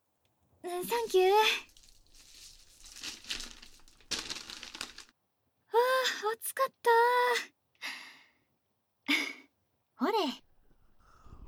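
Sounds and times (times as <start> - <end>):
speech: 0.6 - 1.7, 6.0 - 7.6, 10.0 - 10.4
newspaper crinkling and crumpling while sweet potatoes are taken out of a fire: 0.8 - 5.1.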